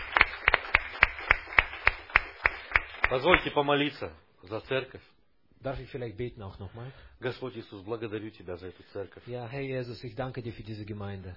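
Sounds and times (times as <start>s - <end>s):
rhythmic applause in a church service: 0.0s - 3.5s
speech: 3.1s - 11.3s.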